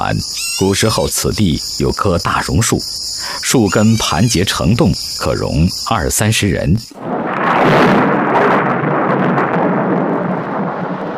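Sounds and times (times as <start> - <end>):
speech: 0.0 - 8.1
heavy downpour in a thunderstorm: 7.0 - 11.1.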